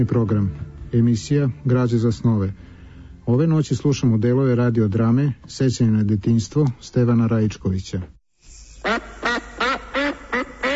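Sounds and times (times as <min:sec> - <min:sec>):
speech: 0:00.0 - 0:02.7, 0:03.3 - 0:08.2
white duck with a thin black line down its neck quacking: 0:08.9 - 0:10.7.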